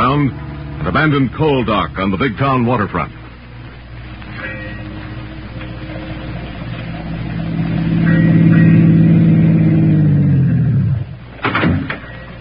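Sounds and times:
car engine revving as it draws near: 0.0s - 12.0s
speech: 0.2s - 3.2s
car doors clunking: 11.4s - 12.3s.

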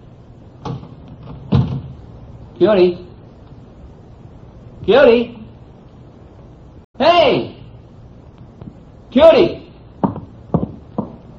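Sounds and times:
wooden door latch clicking and swinging open: 0.6s - 2.0s
speech: 2.6s - 3.1s, 4.8s - 5.4s, 7.0s - 7.5s, 9.2s - 9.6s.

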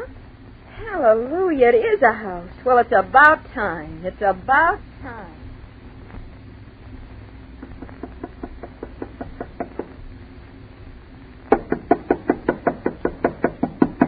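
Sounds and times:
speech: 1.0s - 5.4s
knocking on a door: 7.6s - 10.0s, 11.5s - 14.0s.

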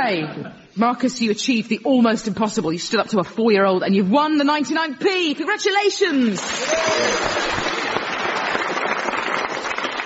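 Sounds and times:
speech: 0.1s - 7.6s
indoor fireworks popping and crackling: 6.4s - 10.0s.

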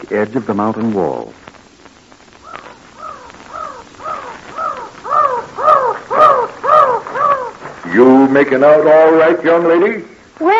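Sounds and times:
speech: 0.0s - 1.5s, 7.9s - 10.5s
mountain crows cawing: 2.4s - 8.2s.

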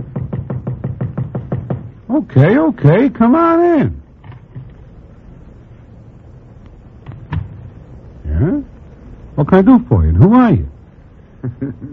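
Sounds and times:
dull woody knocks on a door: 0.0s - 2.0s
speech: 2.1s - 4.0s, 9.4s - 10.8s, 11.4s - 11.9s.

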